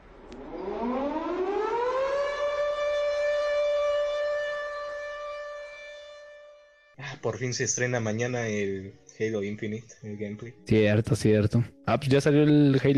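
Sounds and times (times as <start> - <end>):
emergency broadcast alarm siren: 0.1 - 6.9
speech: 7.2 - 12.9.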